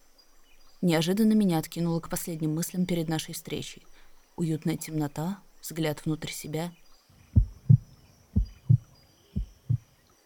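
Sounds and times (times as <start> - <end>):
speech: 0.8 - 6.8
heartbeat thumping: 7.4 - 9.9.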